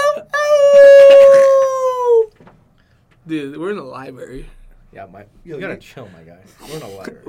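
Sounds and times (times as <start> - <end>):
man screaming: 0.0 - 2.3
speech: 3.3 - 7.2.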